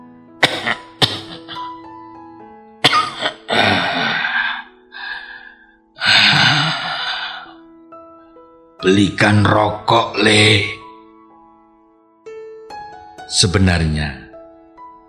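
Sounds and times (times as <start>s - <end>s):
old man's violent coughing fit from an asthma relapse: 0.4s - 1.8s, 2.8s - 4.3s
wheezy gasps: 3.5s - 7.6s
rough growling throat sounds: 6.0s - 7.5s
speech: 8.8s - 10.8s, 13.3s - 14.2s.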